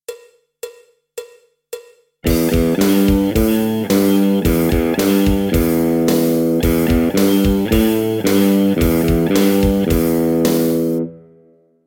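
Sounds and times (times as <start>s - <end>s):
electric guitar metal-rock lick: 2.2s - 11.5s.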